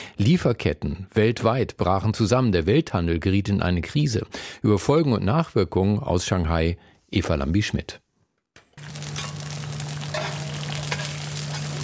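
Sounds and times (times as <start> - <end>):
speech: 0.2 - 8.0
Chinese egg pancakes sizzling on a hot griddle: 8.8 - 11.8.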